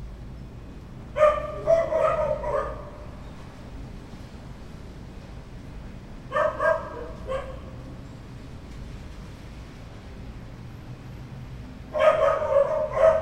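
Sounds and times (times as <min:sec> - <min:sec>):
low background noise: 0:00.0 - 0:13.2
dog barking: 0:01.2 - 0:03.0, 0:06.3 - 0:07.8, 0:11.9 - 0:13.2.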